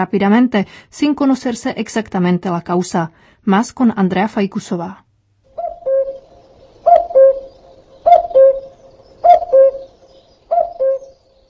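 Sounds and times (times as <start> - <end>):
speech: 0.0 - 5.0
common cuckoo calling: 5.5 - 11.4.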